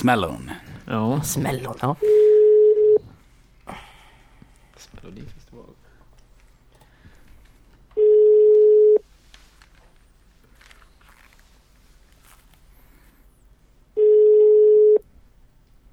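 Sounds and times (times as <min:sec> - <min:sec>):
speech: 0:00.0 - 0:02.4, 0:04.8 - 0:05.8
faint small noises: 0:00.0 - 0:15.9
ringing tone of an outgoing telephone call: 0:02.0 - 0:03.0, 0:08.0 - 0:09.0, 0:14.0 - 0:15.0.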